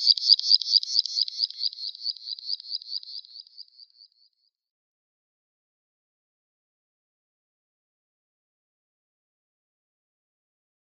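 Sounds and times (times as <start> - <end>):
graceful prinia singing: 0.0 - 4.2.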